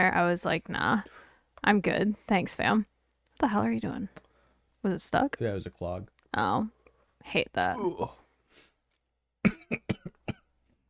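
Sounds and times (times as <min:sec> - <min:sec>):
speech: 0:00.0 - 0:04.2, 0:04.8 - 0:08.2, 0:09.4 - 0:10.0
person coughing in harsh hacking bursts: 0:09.4 - 0:10.5.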